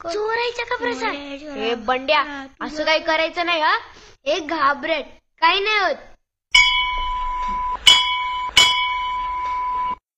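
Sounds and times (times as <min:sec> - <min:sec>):
speech: 0:00.0 - 0:06.1
school bell rung loudly: 0:06.5 - 0:09.8.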